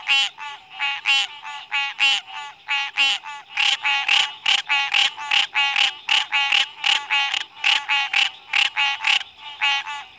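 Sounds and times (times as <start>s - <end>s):
green treefrog honking notes: 0.0s - 10.1s.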